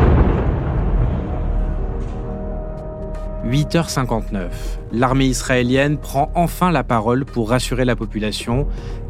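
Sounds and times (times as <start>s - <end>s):
deep rolling booms of missile interception explosions high overhead: 0.0s - 3.4s
speech: 3.4s - 9.0s.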